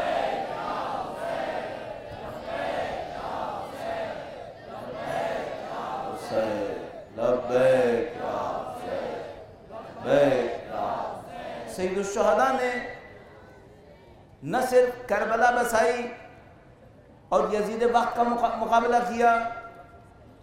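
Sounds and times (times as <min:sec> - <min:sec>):
large crowd chanting religious slogan in unison: 0:00.0 - 0:13.1
speech: 0:06.3 - 0:08.2, 0:11.8 - 0:13.0, 0:14.4 - 0:16.2, 0:17.3 - 0:19.6.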